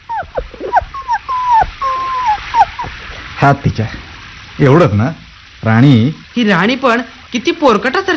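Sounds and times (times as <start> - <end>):
soaked trembling puppy whimpering outside: 0.0 - 3.2
speech: 3.4 - 4.0, 4.6 - 8.1.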